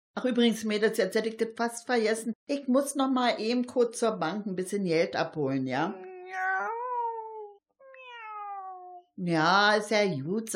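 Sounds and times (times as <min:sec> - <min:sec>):
speech: 0:00.2 - 0:06.4, 0:09.2 - 0:10.5
cat meowing: 0:06.0 - 0:09.1.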